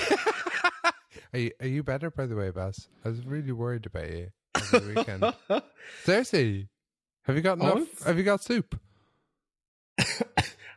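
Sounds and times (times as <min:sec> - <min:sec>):
laughter: 0:00.0 - 0:01.0, 0:04.6 - 0:05.7
speech: 0:01.3 - 0:08.8, 0:10.0 - 0:10.6
person coughing: 0:10.0 - 0:10.7.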